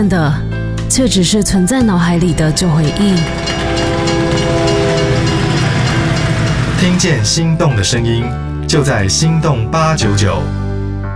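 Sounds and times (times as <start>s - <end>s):
speech: 0.0s - 4.6s, 6.8s - 10.6s
train rumbling through a railway tunnel near a station: 1.2s - 8.0s.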